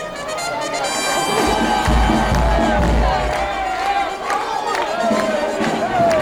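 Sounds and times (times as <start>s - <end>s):
noisy outdoor street crowd chatter: 0.0s - 6.2s
pasodoble with brass-like tones on the streets of Cartagena: 0.0s - 6.2s
people shouting in a street crowd: 0.2s - 6.2s
low thumps: 1.3s - 4.2s.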